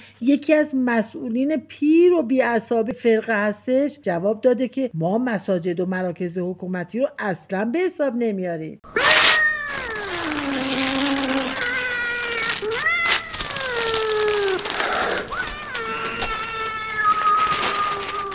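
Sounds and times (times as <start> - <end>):
speech: 0.2 - 9.1
cat meowing and caterwauling: 9.0 - 18.3
paper tearing: 9.0 - 18.3.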